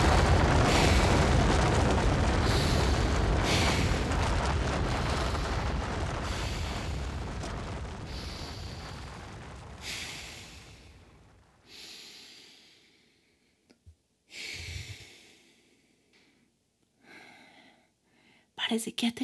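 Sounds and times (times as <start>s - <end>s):
heavy breathing with snorting breaths: 0.0s - 13.6s, 14.3s - 18.5s
speech: 18.7s - 19.2s.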